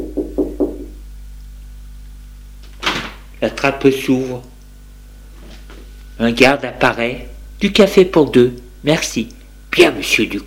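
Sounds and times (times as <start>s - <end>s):
knocking on a door: 0.0s - 1.0s
faint steady hum: 0.0s - 10.4s
speech: 3.4s - 4.5s, 6.2s - 10.4s.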